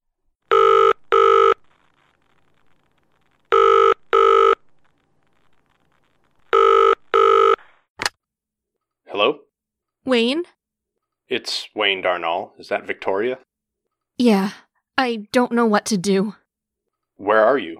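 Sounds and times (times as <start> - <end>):
telephone ringing with electronic trills: 0.5 - 1.6, 3.5 - 4.6, 6.5 - 7.6
speech: 9.2 - 9.4, 10.1 - 10.5, 11.3 - 13.5, 14.2 - 16.4, 17.2 - 17.7.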